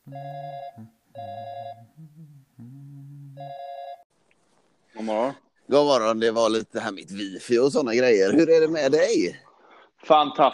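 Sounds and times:
speech: 0:00.1 - 0:00.9, 0:05.0 - 0:09.4, 0:10.1 - 0:10.5
telephone ringing on a call waiting for an answer: 0:00.1 - 0:01.8, 0:03.4 - 0:04.0.

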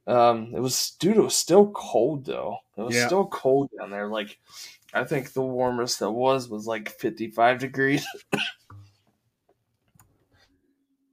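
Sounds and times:
speech: 0:00.1 - 0:08.6
person coughing: 0:08.0 - 0:08.7.

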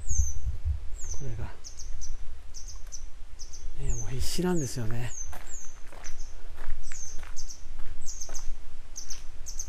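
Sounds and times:
grey wagtail calling as it flies overhead: 0:00.0 - 0:09.6
speech: 0:01.2 - 0:01.9, 0:04.1 - 0:05.2.

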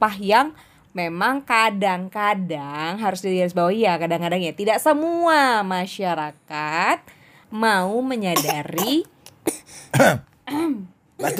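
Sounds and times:
speech: 0:00.0 - 0:11.3
person coughing and clearing throat: 0:08.4 - 0:10.2, 0:11.2 - 0:11.3.

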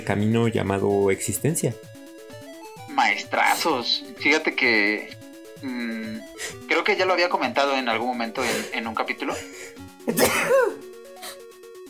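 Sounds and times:
speech: 0:00.0 - 0:02.0, 0:03.0 - 0:10.8
soft music: 0:00.0 - 0:11.8
loud sneeze: 0:03.4 - 0:03.7, 0:10.1 - 0:11.4.

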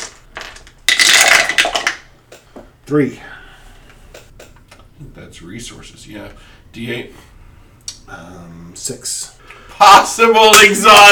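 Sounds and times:
dice shaking: 0:00.0 - 0:02.0
speech: 0:02.9 - 0:03.3, 0:05.4 - 0:07.3, 0:08.1 - 0:11.0.

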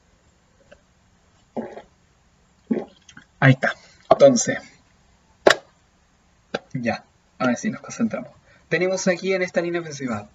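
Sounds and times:
gulping swallows of water: 0:01.5 - 0:01.9, 0:02.7 - 0:03.4
mouth clicks: 0:01.6 - 0:01.9, 0:02.6 - 0:03.4
speech: 0:03.4 - 0:04.7, 0:06.8 - 0:10.3.

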